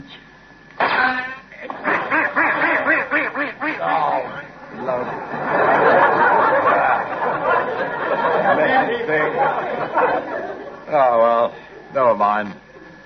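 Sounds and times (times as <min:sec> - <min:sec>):
laughter: 0:01.6 - 0:11.9
duck quacking: 0:01.7 - 0:04.2.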